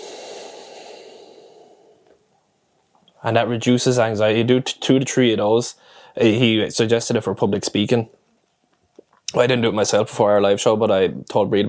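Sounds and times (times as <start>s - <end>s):
long airy exhale from a breathing exercise to ease anxiety: 0.0s - 2.1s
speech: 3.2s - 8.2s, 9.3s - 11.6s.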